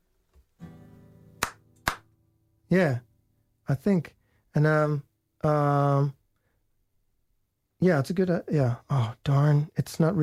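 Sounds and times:
sharp hand claps: 0:01.4 - 0:02.2
speech: 0:02.7 - 0:03.1, 0:03.7 - 0:06.2, 0:07.8 - 0:10.2.

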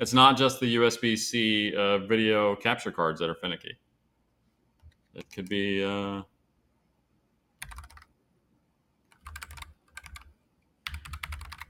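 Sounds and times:
speech: 0:00.0 - 0:03.8, 0:05.2 - 0:06.3
typing on a computer keyboard: 0:07.6 - 0:08.1, 0:09.1 - 0:11.6.

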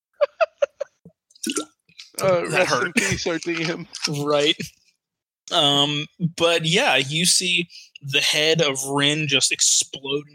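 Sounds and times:
laughter: 0:00.2 - 0:01.0
person gulping water: 0:01.4 - 0:02.7
speech: 0:02.2 - 0:04.8, 0:05.5 - 0:10.3.

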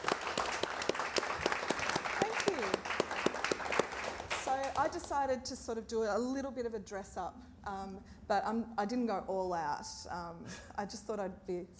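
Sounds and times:
small audience applauding a panel host: 0:00.0 - 0:04.8
speech: 0:04.8 - 0:11.7.

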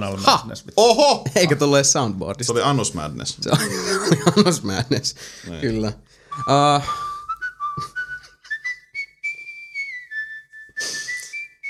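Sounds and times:
speech: 0:00.0 - 0:07.0
laughter: 0:03.5 - 0:05.1
person whistling a short melody: 0:06.3 - 0:11.6.

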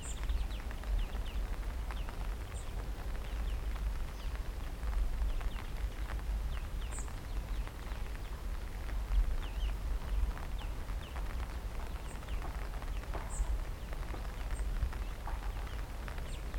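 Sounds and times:
birds chirping after rain: 0:00.0 - 0:16.5
soft wet patter after rain: 0:00.0 - 0:16.5.

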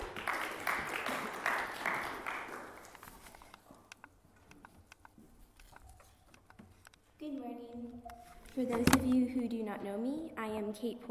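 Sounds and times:
audience applause: 0:00.0 - 0:03.0
speech: 0:08.6 - 0:11.1.

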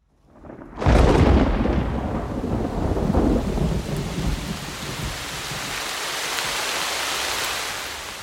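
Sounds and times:
loud rumble of thunder: 0:00.3 - 0:05.8
steady heavy rain pouring down: 0:00.4 - 0:08.2.

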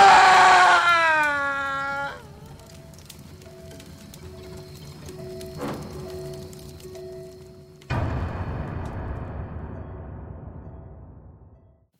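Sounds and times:
person screaming high-pitched at the end of a scary story: 0:00.0 - 0:02.3.

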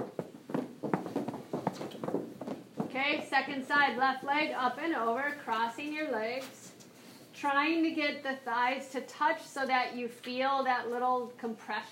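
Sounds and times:
feet stomping on a floor: 0:00.0 - 0:03.3
speech: 0:03.0 - 0:06.6, 0:07.4 - 0:11.9.

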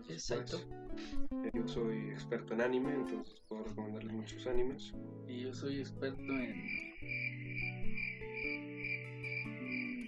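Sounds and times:
speech: 0:00.0 - 0:07.4
crickets chirping: 0:06.2 - 0:10.0.

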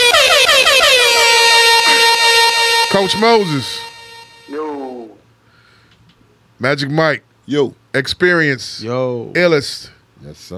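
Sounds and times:
air horn sound effect blasts: 0:00.0 - 0:05.1
speech: 0:03.0 - 0:03.8, 0:06.6 - 0:10.5.

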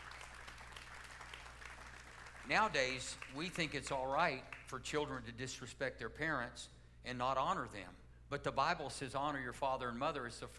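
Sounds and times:
large crowd applauding: 0:00.0 - 0:03.6
speech: 0:02.5 - 0:10.5.

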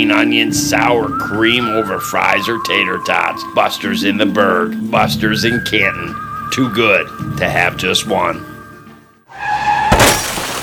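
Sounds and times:
speech: 0:00.0 - 0:08.5
car crash: 0:09.3 - 0:10.6
car tires squealing in a skid: 0:09.3 - 0:10.6
glass shattering: 0:09.9 - 0:10.6.

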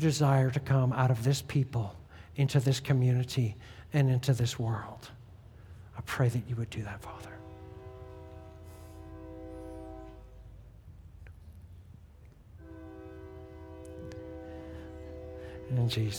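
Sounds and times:
speech: 0:00.0 - 0:05.2, 0:06.0 - 0:07.4, 0:15.7 - 0:16.1
freight train rumbling: 0:00.0 - 0:16.1
freight train horn long loud blasts: 0:06.9 - 0:11.3, 0:12.6 - 0:16.1.

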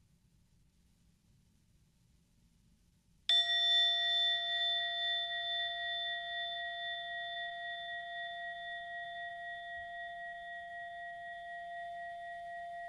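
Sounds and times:
meditation bell struck and ringing: 0:03.3 - 0:12.8.

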